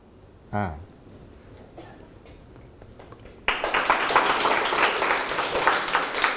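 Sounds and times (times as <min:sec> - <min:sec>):
person speaking: 0:00.5 - 0:00.9
roomful of students applauding: 0:03.0 - 0:06.3.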